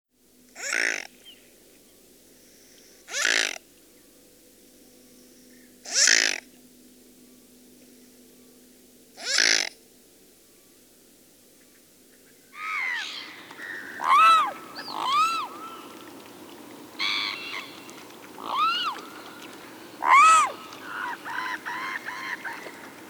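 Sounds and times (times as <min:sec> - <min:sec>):
mute swan: 0:00.6 - 0:01.1, 0:03.1 - 0:03.6, 0:05.9 - 0:06.5, 0:09.2 - 0:09.8, 0:12.6 - 0:23.0.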